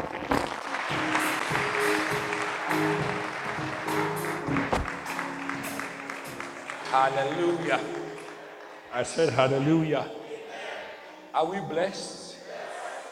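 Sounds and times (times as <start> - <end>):
crowd clapping: 0.0 - 9.5
murmuring voices: 0.8 - 13.1
speech: 6.9 - 8.0, 8.9 - 10.2, 11.4 - 12.2.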